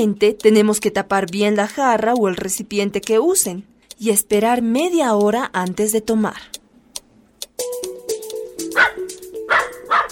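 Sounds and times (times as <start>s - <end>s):
speech: 0.0s - 6.6s
class pet dog barking and yelping in a classroom: 8.7s - 10.1s.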